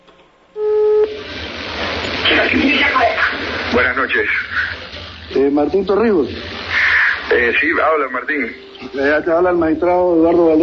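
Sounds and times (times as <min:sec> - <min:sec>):
hiss of an open phone line: 0:00.3 - 0:10.6
single steady telephone tone: 0:00.6 - 0:01.2
speech: 0:02.3 - 0:04.7, 0:05.3 - 0:06.6, 0:07.3 - 0:10.6.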